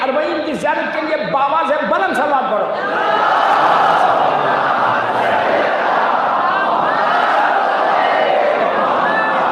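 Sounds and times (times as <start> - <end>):
speech: 0.2 - 2.8
crowd chanting slogans at a religious gathering: 2.8 - 9.4.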